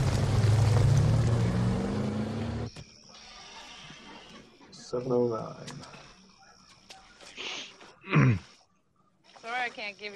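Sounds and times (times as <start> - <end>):
heavy wrecking truck engine revving: 0.0 - 2.7
speech: 4.9 - 6.0, 9.7 - 10.1.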